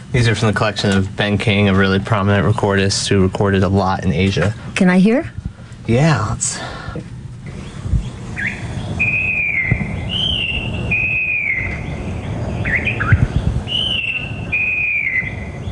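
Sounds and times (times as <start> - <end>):
speech: 0.1 - 7.1
falcated wren babbler singing loudly: 7.5 - 15.7.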